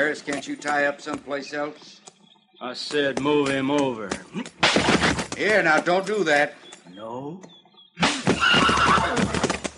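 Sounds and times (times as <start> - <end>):
speech: 0.0 - 9.4
hooves clopping and shuffling: 0.0 - 9.7
horse at a hitch rack whinnying after being hit: 8.0 - 9.5.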